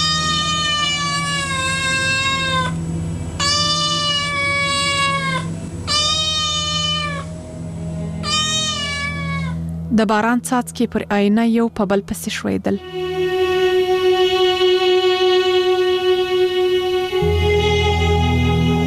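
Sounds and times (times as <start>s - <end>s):
cat meowing at a window: 0.0s - 2.8s, 3.4s - 7.3s, 8.2s - 9.6s
constant low hum: 0.0s - 18.8s
speech: 10.0s - 13.0s.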